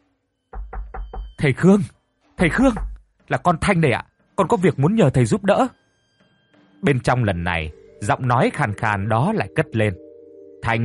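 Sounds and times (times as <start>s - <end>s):
heavy knocking on the door of an old master's house: 0.5s - 1.4s, 2.5s - 3.0s
speech: 1.4s - 5.8s, 6.8s - 10.0s, 10.6s - 10.8s.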